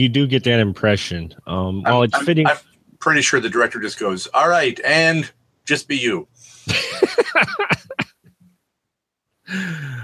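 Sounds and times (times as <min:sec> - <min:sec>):
speech: 0:00.0 - 0:08.1, 0:09.5 - 0:10.0
laughter: 0:01.8 - 0:04.2, 0:06.4 - 0:08.2
hacking coughs into the microphone: 0:01.9 - 0:02.7, 0:06.7 - 0:08.4
breathy rasping exhale: 0:06.4 - 0:06.7, 0:09.5 - 0:10.0.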